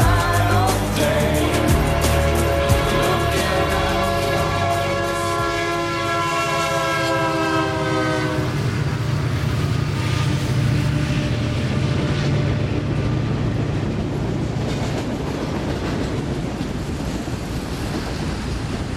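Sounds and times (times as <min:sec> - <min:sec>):
train rumbling past with roar and clatter of passing cars: 0:00.0 - 0:18.9
train horn blaring a sustained chord: 0:00.9 - 0:13.1.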